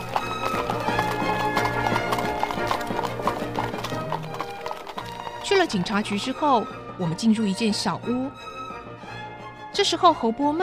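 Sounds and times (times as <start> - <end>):
horse hooves clip-clopping as a horse-drawn carriage travels: 0.0 - 6.6
speech: 5.6 - 8.5, 9.8 - 10.6.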